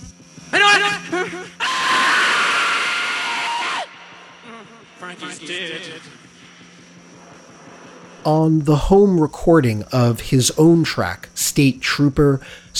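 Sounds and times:
rock vocalist screaming in a distorted song recording: 0:00.5 - 0:03.9
strained vocal cries: 0:00.5 - 0:05.8
speech: 0:00.8 - 0:01.6, 0:05.2 - 0:06.2, 0:08.2 - 0:12.7.

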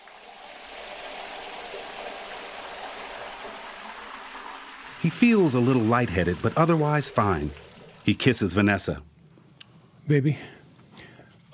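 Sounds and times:
shower water running: 0:00.0 - 0:09.0
speech: 0:05.0 - 0:09.1, 0:10.1 - 0:10.6.

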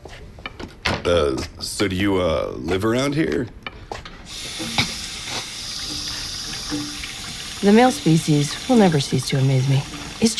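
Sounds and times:
speech: 0:01.0 - 0:03.6, 0:06.7 - 0:06.9, 0:07.6 - 0:10.3
water running from a kitchen sink tap: 0:04.3 - 0:10.3.

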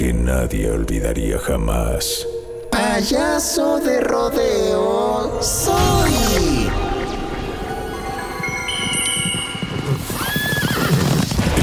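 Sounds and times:
speech: 0:00.3 - 0:06.7
horse hooves galloping: 0:07.7 - 0:11.6
horse neighing: 0:09.7 - 0:11.2.

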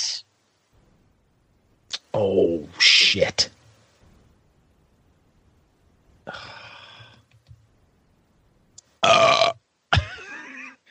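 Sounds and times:
speech: 0:02.2 - 0:03.6
wet burps: 0:09.0 - 0:09.6.

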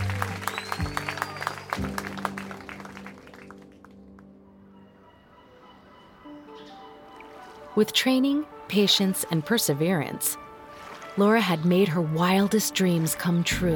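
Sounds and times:
crowd cheering and clapping: 0:00.0 - 0:04.3
speech: 0:07.8 - 0:10.4, 0:11.2 - 0:13.7.

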